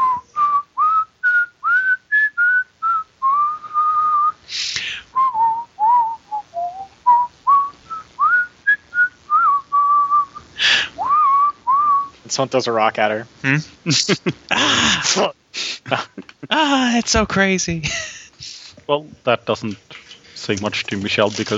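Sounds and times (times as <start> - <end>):
girl whistling a tune down a hallway: 0.0 - 4.3, 5.2 - 10.4, 11.0 - 12.1
speech: 12.4 - 18.1, 18.9 - 19.8, 20.5 - 21.5
laughter: 13.4 - 16.8, 17.7 - 18.7.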